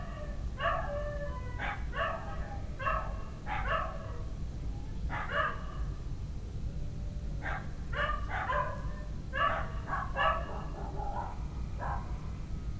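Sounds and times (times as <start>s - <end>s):
dogs barking at night in a village: 0.0s - 4.3s, 5.1s - 5.9s, 7.4s - 12.2s
constant low rumble of background noise: 0.0s - 12.7s.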